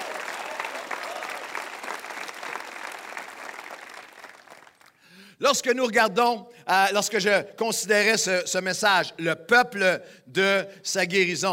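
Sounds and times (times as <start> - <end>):
large crowd applauding in an ovation for volunteers: 0.0 - 5.1
speech: 5.4 - 11.5.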